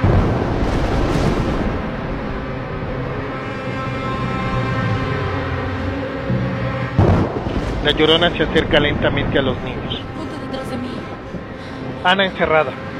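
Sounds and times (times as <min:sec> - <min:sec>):
sharp thunder crack: 0:00.0 - 0:03.3, 0:07.0 - 0:10.2
thunder with lightning: 0:00.0 - 0:12.1
speech: 0:07.9 - 0:10.3, 0:12.0 - 0:12.9.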